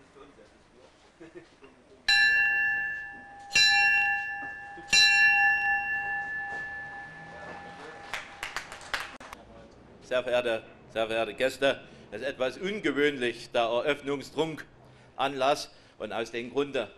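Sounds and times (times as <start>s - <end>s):
bell ringing: 2.1s - 9.1s
people clapping: 7.4s - 9.4s
speech: 10.1s - 16.9s.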